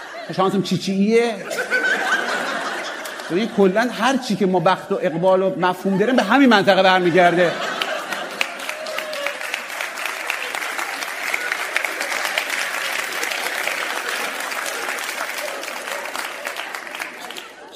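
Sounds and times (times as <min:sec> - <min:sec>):
laughter: 0:00.0 - 0:17.7
speech: 0:00.3 - 0:01.7, 0:03.3 - 0:07.7
audience applause at a stand-up comedy show: 0:07.5 - 0:17.7.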